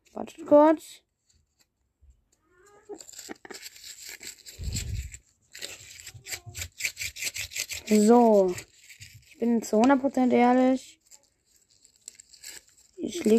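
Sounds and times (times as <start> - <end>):
speech: 0.2 - 1.0, 2.9 - 4.9, 7.9 - 8.7, 9.4 - 11.0, 13.0 - 13.3
small handmade paper slips rustling as they are shuffled for a random draw: 2.9 - 13.3.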